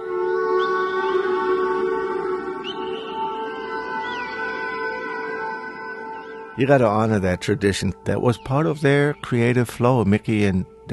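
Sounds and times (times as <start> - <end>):
whale song in a recorded music track: 0.0 - 6.6
droning wash of sustained tones in a recorded music track: 0.0 - 10.9
speech: 6.6 - 10.9.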